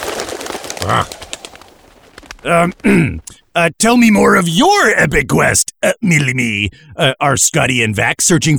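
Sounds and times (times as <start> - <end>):
bird squawking: 0.8 - 1.2
speech: 0.8 - 1.2, 2.4 - 8.5.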